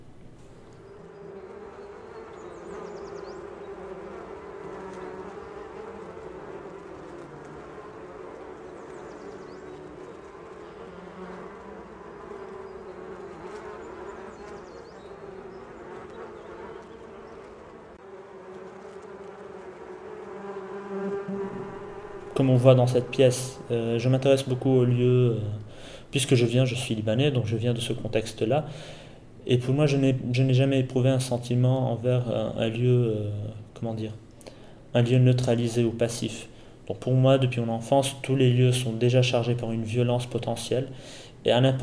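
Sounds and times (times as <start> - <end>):
swarm of many bees buzzing: 0.0 - 1.0, 21.4 - 41.8
speech: 22.4 - 34.2, 34.9 - 41.8.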